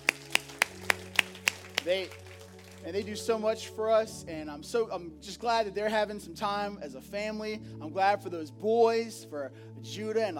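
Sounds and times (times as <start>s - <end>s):
applause claps: 0.0s - 3.3s
speech: 1.8s - 10.3s.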